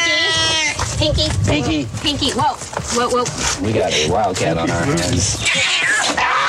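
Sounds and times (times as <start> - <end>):
people talking: 0.0 - 5.4
male domestic shorthair cat yowling and growling angrily: 5.4 - 6.4.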